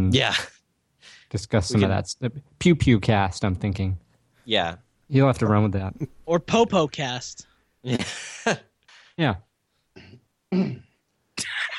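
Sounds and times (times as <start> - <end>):
speech: 0.0 - 0.6, 1.3 - 9.5, 10.5 - 10.9
rough throaty coughs: 10.0 - 11.6.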